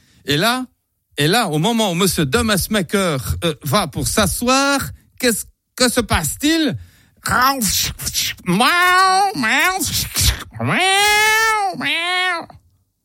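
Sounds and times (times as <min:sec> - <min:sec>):
speech: 0:00.2 - 0:12.6
voice imitating screeching yowls of a cat sat on in an armchair: 0:08.2 - 0:12.6.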